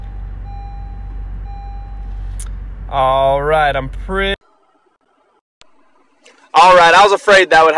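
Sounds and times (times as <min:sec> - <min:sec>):
car engine idling: 0:00.0 - 0:04.4
speech: 0:02.4 - 0:04.4, 0:06.6 - 0:07.7.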